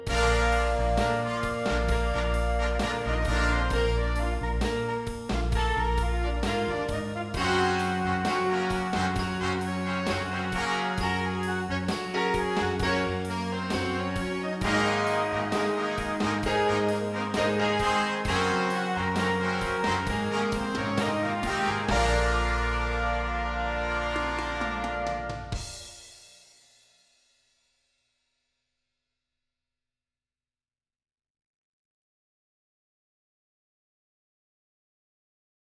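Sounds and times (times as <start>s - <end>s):
horns playing in fifths: 0.1s - 25.9s.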